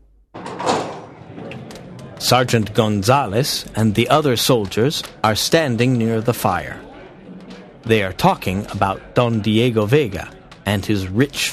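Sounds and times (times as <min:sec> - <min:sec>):
tavern door swinging open with wood and hinges rumbling: 0:00.4 - 0:02.5
speech: 0:02.2 - 0:06.8, 0:07.8 - 0:11.5.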